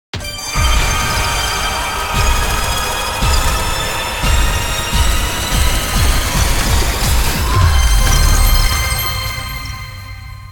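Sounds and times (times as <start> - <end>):
big win jingle: 0.2 - 10.5.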